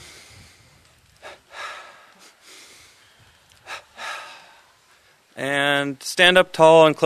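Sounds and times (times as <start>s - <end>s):
longer blown exhale of a double breathing exercise: 0.0s - 4.8s
sharp sniffing inhales of a double breathing exercise: 0.0s - 5.1s
speech: 5.4s - 7.0s.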